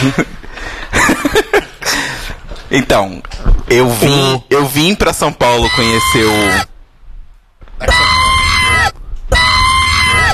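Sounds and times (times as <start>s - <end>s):
speech: 0.0s - 2.0s, 2.7s - 6.7s
laughter: 0.0s - 2.4s
bright harsh scream sound effect: 7.8s - 10.3s.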